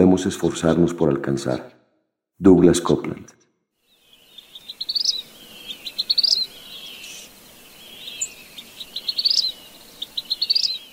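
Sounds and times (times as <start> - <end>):
speech: 0.2 - 1.8, 2.4 - 3.4
soft steady hiss of insects or ambience: 3.8 - 10.9
vermilion flycatcher singing: 3.8 - 10.9.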